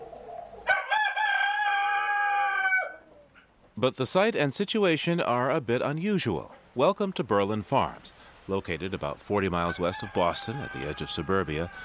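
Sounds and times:
rooster crowing on a farm: 0.7 - 3.0, 9.6 - 11.8
speech: 3.8 - 11.8.

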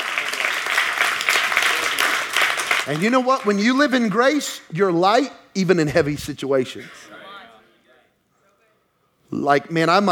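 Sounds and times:
crowd clapping: 0.0 - 4.5
speech: 2.9 - 7.0, 9.3 - 10.1.

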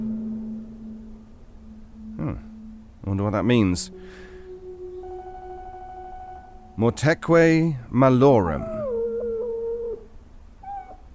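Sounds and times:
speech: 2.2 - 2.5, 3.1 - 4.2, 6.8 - 8.8
unneutered male dog howling: 4.4 - 6.8, 8.5 - 11.1
unneutered male dog whining: 8.6 - 11.1.

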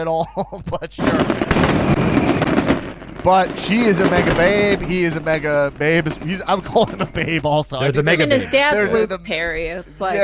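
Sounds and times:
laughter: 0.0 - 1.2, 6.3 - 9.2
speech: 0.0 - 2.5, 3.2 - 10.2
fireworks crackling and popping: 1.0 - 9.0.

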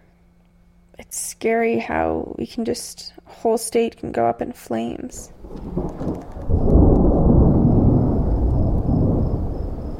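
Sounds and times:
speech: 1.1 - 6.2
deep loud thunder rumbling from nearby lightning: 5.3 - 9.9.

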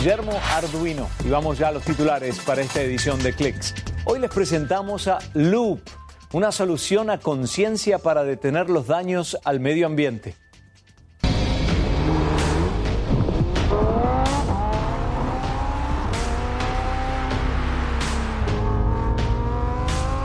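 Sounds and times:
speech: 0.0 - 10.4
Lamborghini Huracán Evo sports car engine revving through gear shifts: 11.2 - 20.2.

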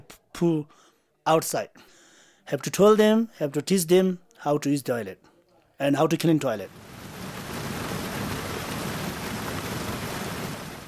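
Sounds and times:
speech: 0.1 - 6.9
heavy rain: 6.6 - 10.8.

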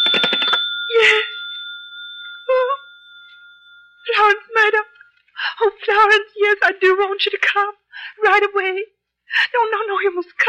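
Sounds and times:
old-fashioned telephone bell ringing: 0.0 - 5.0
speech: 5.8 - 10.4.

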